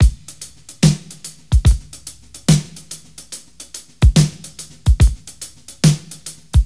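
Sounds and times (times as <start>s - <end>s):
72 bpm drum loop in A sharp: 0.0s - 6.6s.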